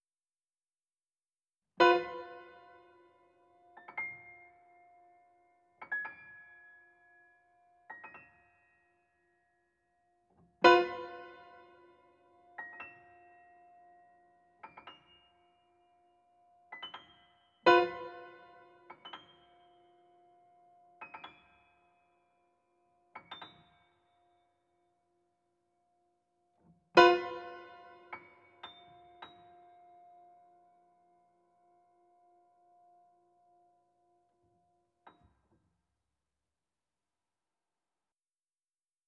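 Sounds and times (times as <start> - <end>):
pianoforte: 1.8 - 24.8, 26.6 - 35.4.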